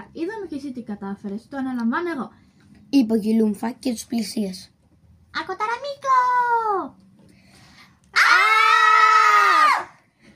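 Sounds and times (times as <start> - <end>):
speech: 0.5 - 7.0
voice imitating a high-pitched alien shriek: 8.1 - 10.0.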